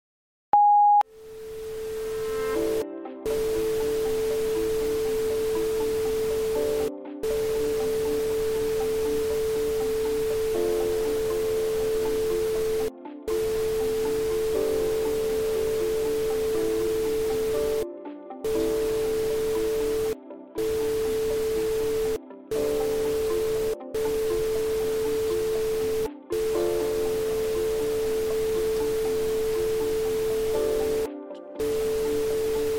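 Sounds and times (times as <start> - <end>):
short high beep: 0.6 - 1.0
steady electronic tones: 0.6 - 17.8, 18.5 - 32.7
hissing static: 1.1 - 17.8, 18.5 - 32.7.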